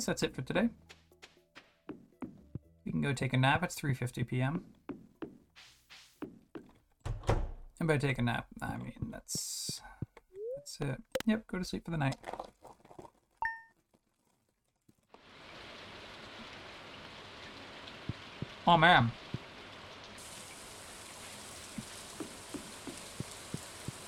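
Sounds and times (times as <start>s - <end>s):
speech: 0.0s - 1.0s, 3.0s - 4.8s, 7.8s - 9.9s, 10.7s - 12.4s, 18.6s - 19.3s
steady rain in video game ambience: 15.2s - 24.0s.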